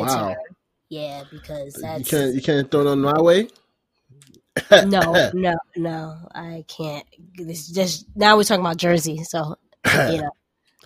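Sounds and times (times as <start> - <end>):
speech: 0.0 - 3.6, 4.6 - 10.4
loud cough: 4.6 - 5.3, 9.9 - 10.3.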